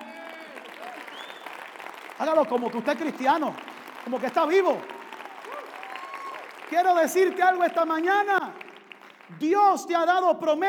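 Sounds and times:
faint cheers and whoops: 0:00.0 - 0:01.6, 0:04.6 - 0:06.7
large audience applauding: 0:00.0 - 0:09.5
speech: 0:02.2 - 0:05.0, 0:06.7 - 0:08.4, 0:09.3 - 0:10.6.

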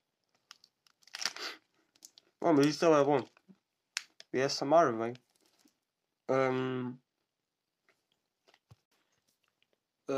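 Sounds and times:
chewing a crunchy chocolate peanut cereal bar: 0:00.3 - 0:04.2
speech: 0:02.4 - 0:03.4, 0:04.3 - 0:05.2, 0:06.3 - 0:07.0.

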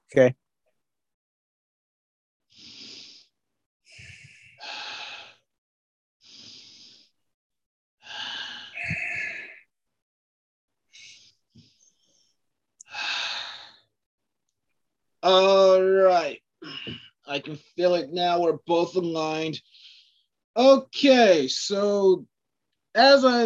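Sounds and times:
speech: 0:00.1 - 0:00.4, 0:15.3 - 0:19.7, 0:20.6 - 0:22.3, 0:22.9 - 0:23.4
deep breaths: 0:02.5 - 0:05.5, 0:06.2 - 0:07.2, 0:08.0 - 0:09.6, 0:12.9 - 0:13.9, 0:19.6 - 0:20.3.

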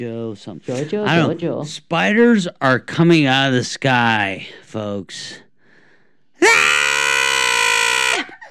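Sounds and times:
speech: 0:00.0 - 0:05.4, 0:06.4 - 0:06.8
person screaming at a harsh pitch: 0:06.4 - 0:08.4.

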